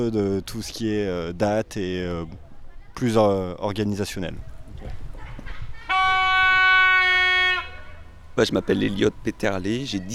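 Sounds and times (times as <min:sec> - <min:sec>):
speech: 0:00.0 - 0:02.4, 0:03.0 - 0:05.0, 0:08.4 - 0:10.1
foghorn blast calling young people to a gathering: 0:05.9 - 0:08.1.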